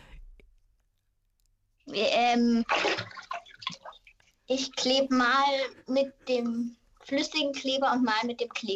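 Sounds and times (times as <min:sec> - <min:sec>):
speech: 0:01.9 - 0:03.2, 0:04.5 - 0:08.7
water sloshing and splashing in a bathtub: 0:01.9 - 0:05.4, 0:06.4 - 0:08.7.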